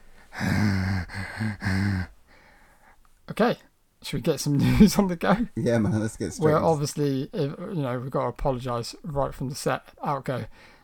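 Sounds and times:
exaggerated heavy voiced raspy panting breaths: 0:00.0 - 0:03.0
speech: 0:01.4 - 0:02.1, 0:03.4 - 0:10.7.

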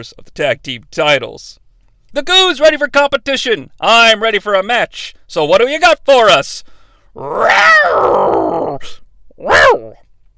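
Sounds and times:
speech: 0:00.0 - 0:10.0
short breath: 0:06.6 - 0:07.2
man's voice imitating a wrestler's entrance theme roar: 0:07.2 - 0:10.0.

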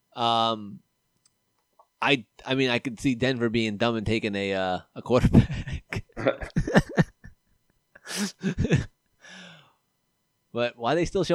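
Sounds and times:
speech: 0:00.2 - 0:00.9, 0:02.0 - 0:06.9, 0:10.6 - 0:11.3
person sneezing: 0:08.0 - 0:08.6.

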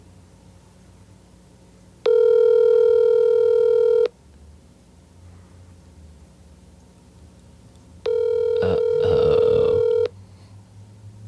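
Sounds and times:
faint hiss: 0:00.0 - 0:11.2
phone ringback tone on an outgoing call: 0:02.0 - 0:04.1, 0:08.0 - 0:10.1.

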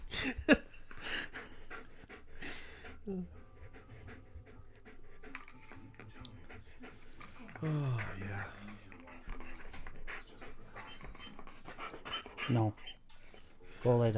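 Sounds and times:
dog panting heavily: 0:00.6 - 0:14.1
speech: 0:03.1 - 0:03.4, 0:07.6 - 0:08.0, 0:12.5 - 0:13.0, 0:13.8 - 0:14.1.

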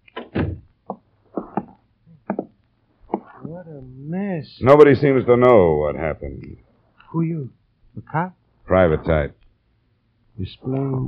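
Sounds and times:
door pushed shut with wooden thuds: 0:00.2 - 0:00.6
speech: 0:03.6 - 0:09.4, 0:10.4 - 0:11.0.

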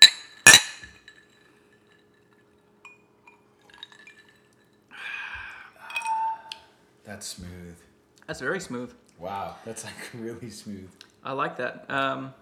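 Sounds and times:
glasses clinking in a toast: 0:00.0 - 0:04.8, 0:05.4 - 0:06.6
speech: 0:07.1 - 0:12.4.

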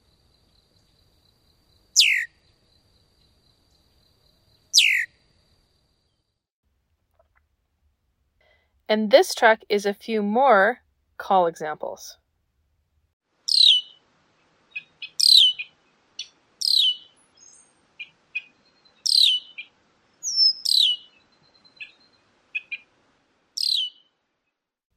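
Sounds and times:
red-winged blackbird chek calls and buzzy chips: 0:02.0 - 0:02.4, 0:04.7 - 0:05.2, 0:13.5 - 0:14.0, 0:14.7 - 0:22.9, 0:23.6 - 0:24.1
speech: 0:08.9 - 0:12.2.

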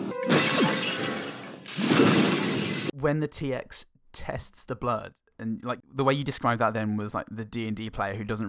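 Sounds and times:
stock sound-effect porcelain smashing: 0:00.2 - 0:02.9
speech: 0:03.0 - 0:08.4.

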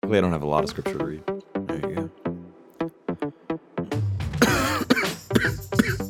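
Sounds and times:
speech: 0:00.1 - 0:02.1
person coughing with rough throaty hacking: 0:04.4 - 0:06.0.

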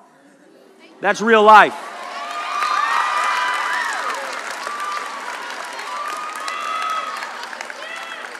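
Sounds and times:
speech: 0:01.0 - 0:01.9
crowd applauding: 0:01.8 - 0:08.3.

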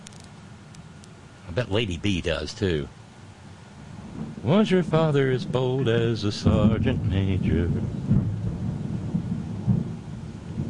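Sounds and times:
rain hissing: 0:00.0 - 0:10.6
speech: 0:01.5 - 0:03.0, 0:04.4 - 0:08.2
thunder rumbling and echoing in the mountains: 0:04.0 - 0:10.6.

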